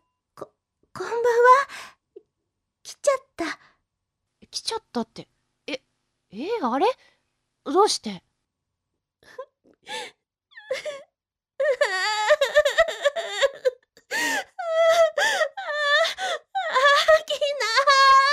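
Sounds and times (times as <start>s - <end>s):
speech: 5.0s - 5.8s, 6.4s - 7.0s, 7.7s - 8.3s
person crying with gasping sobs and wails: 10.6s - 18.3s.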